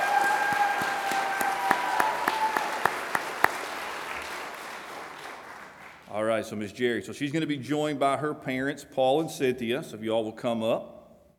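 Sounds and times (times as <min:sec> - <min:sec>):
audience at a graduation ceremony clapping: 0:00.0 - 0:06.2
speech: 0:06.4 - 0:11.0.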